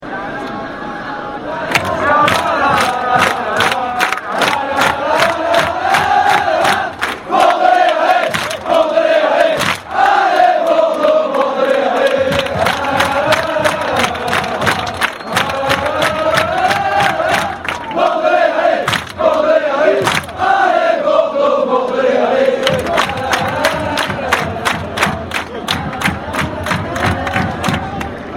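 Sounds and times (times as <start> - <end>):
football supporters chanting: 0.0 - 28.3.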